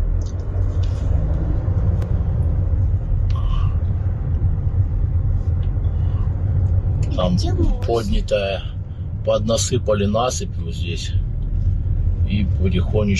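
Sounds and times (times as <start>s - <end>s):
cars slowly driving over a bridge toward Crimea: 0.0s - 13.1s
speech: 7.4s - 11.3s, 12.3s - 13.1s.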